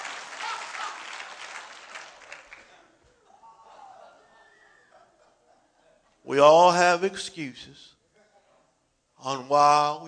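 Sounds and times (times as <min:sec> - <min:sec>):
audience applauding: 0:00.0 - 0:02.9
laughter: 0:02.1 - 0:06.2
speech: 0:06.3 - 0:08.0, 0:09.2 - 0:10.0.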